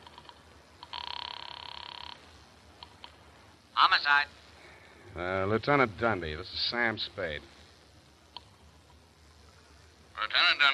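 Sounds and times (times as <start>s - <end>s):
telephone ringing with a trilling burst: 0.0s - 2.3s
speech: 3.8s - 4.4s, 5.2s - 7.6s, 10.4s - 10.7s.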